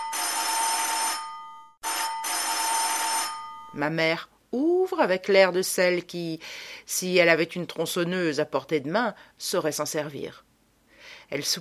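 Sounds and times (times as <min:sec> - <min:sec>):
shrill doorbell ringing at a house door: 0:00.0 - 0:03.8
speech: 0:03.7 - 0:10.5, 0:11.2 - 0:11.5.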